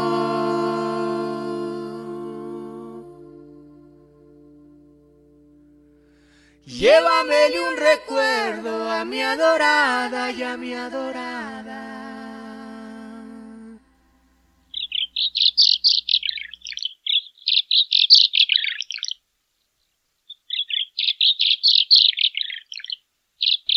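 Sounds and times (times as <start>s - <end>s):
low humming tone: 0.0s - 8.2s, 10.6s - 16.2s
speech: 6.7s - 11.9s
pilmaiken small bird calling in high rapid twittering chirps: 14.7s - 23.7s.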